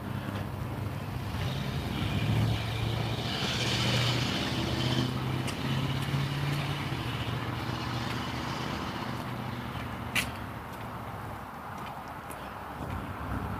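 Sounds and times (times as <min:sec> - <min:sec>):
outdoor noise: 0:00.0 - 0:13.5
wind: 0:00.0 - 0:13.5
pickup truck driving past an intersection: 0:01.0 - 0:10.6.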